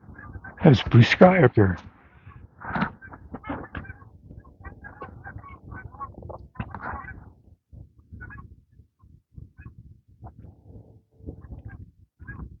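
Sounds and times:
flock of geese honking overhead: 0:00.1 - 0:07.3
speech: 0:00.6 - 0:01.9.

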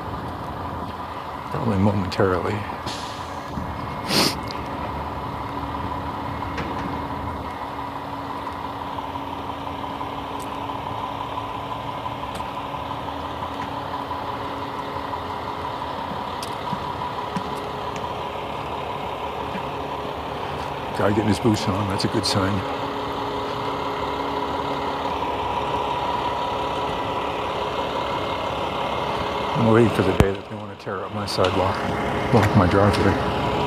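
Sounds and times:
cement truck engine idling at a site prepped for a concrete pour: 0:00.0 - 0:33.6
speech: 0:01.5 - 0:03.0, 0:21.0 - 0:22.9, 0:29.6 - 0:33.4.

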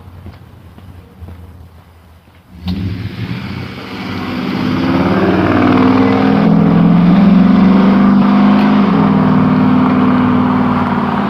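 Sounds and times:
loud pickup truck engine rumbling while driving past: 0:02.5 - 0:11.2.

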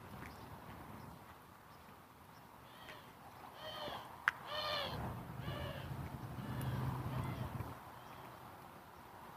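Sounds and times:
doves squawking: 0:02.7 - 0:08.4.

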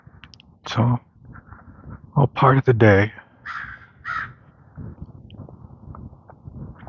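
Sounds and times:
speech: 0:00.7 - 0:01.1, 0:02.2 - 0:03.2
crow cawing harshly in the morning: 0:03.4 - 0:04.4.

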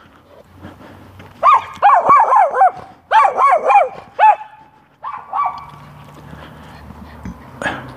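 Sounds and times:
dog barking: 0:01.4 - 0:05.7.

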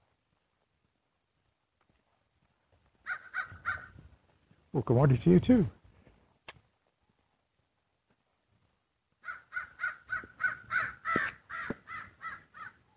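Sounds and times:
two crows cawing harshly: 0:03.0 - 0:04.0, 0:09.2 - 0:12.9
speech: 0:04.8 - 0:05.8.

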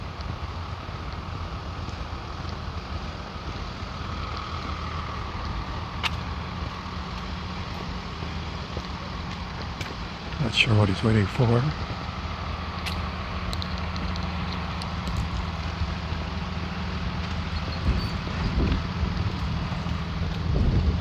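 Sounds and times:
school bus diesel engine idling: 0:00.0 - 0:21.0
speech: 0:10.5 - 0:11.9.

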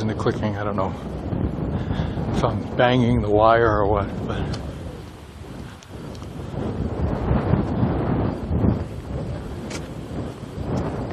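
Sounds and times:
wind buffeting the microphone outdoors: 0:00.0 - 0:11.1
speech: 0:00.1 - 0:04.7.

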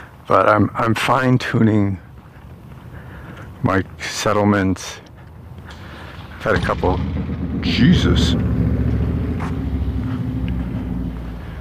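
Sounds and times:
speech: 0:00.3 - 0:02.0, 0:03.6 - 0:05.0, 0:06.4 - 0:08.5
motorcycle engine idling: 0:05.6 - 0:11.5.

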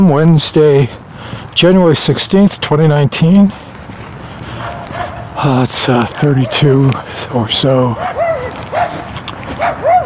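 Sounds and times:
speech: 0:00.0 - 0:03.6, 0:05.4 - 0:08.2
steady noise: 0:00.0 - 0:10.0
two small yappy dogs barking: 0:04.6 - 0:05.4, 0:08.0 - 0:10.0.

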